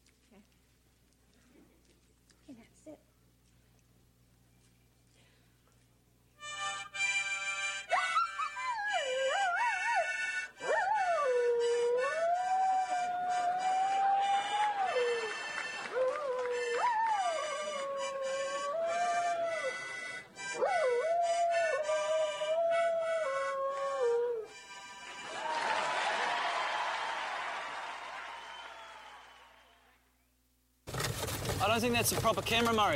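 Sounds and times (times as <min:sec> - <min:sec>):
steady harmonica chords: 0:06.3 - 0:25.7
large Shetland sheepdog howling: 0:08.8 - 0:19.9, 0:20.6 - 0:24.5
noisy applause or laughter: 0:15.3 - 0:16.6, 0:25.1 - 0:29.9
speech: 0:31.7 - 0:32.9.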